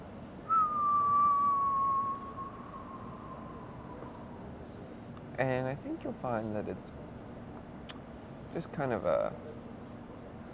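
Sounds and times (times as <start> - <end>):
person whistling while exhaling smoke: 0.5 - 3.8
speech: 5.4 - 7.1, 8.5 - 9.7.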